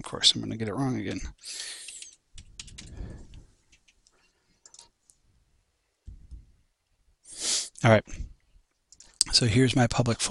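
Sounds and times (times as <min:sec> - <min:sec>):
speech: 0:00.0 - 0:01.8, 0:07.8 - 0:08.3, 0:09.3 - 0:10.2
username and password typed on a computer keyboard: 0:01.8 - 0:04.9.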